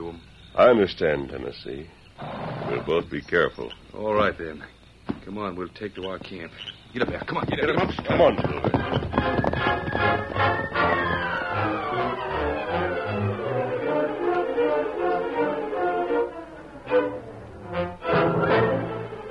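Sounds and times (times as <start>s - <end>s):
speech: 0.1s - 11.0s
hoofbeats of horses ridden hard: 5.0s - 13.6s
dramatic music: 9.6s - 19.2s.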